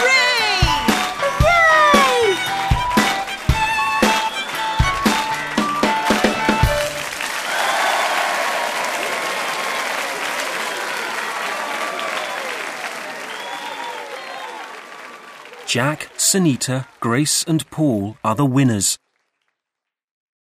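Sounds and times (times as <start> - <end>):
music: 0.0 - 7.3
big crowd applauding and cheering: 0.0 - 19.5
speech: 15.7 - 19.0.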